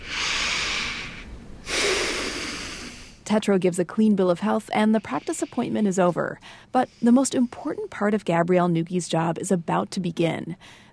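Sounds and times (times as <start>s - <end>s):
person taking deep breaths during a physical exam: 0.0s - 3.2s, 6.4s - 7.7s, 10.6s - 10.9s
speech: 3.3s - 10.9s.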